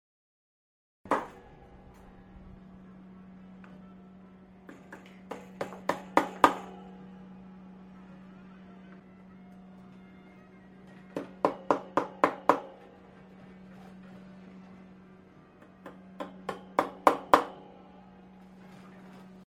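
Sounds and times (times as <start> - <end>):
hammer: 1.1 - 1.4, 4.7 - 6.9, 11.0 - 12.9, 15.6 - 17.8
carpentry workshop background noise: 1.1 - 19.4.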